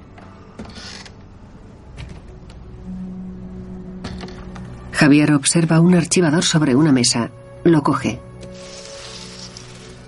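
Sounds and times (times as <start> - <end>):
door hinges creaking: 0.6 - 1.2
speech: 5.0 - 8.7.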